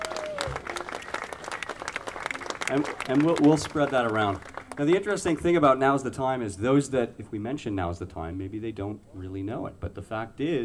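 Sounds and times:
audience applause for saxophone players: 0.0 - 5.4
speech: 2.7 - 10.6.

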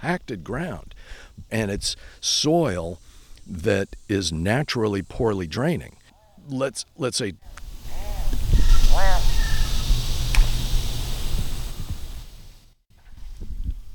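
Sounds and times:
speech: 0.0 - 7.6
steady outdoor rumble of wind: 7.5 - 12.6
leopard frog distress call while being eaten: 7.6 - 11.0.

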